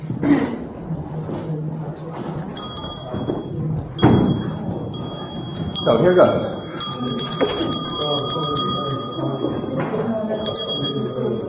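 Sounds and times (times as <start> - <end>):
murmur of people talking: 0.0 - 11.4
loud bell ringing with rapid rattling strike: 2.6 - 11.4
speech: 6.0 - 6.6.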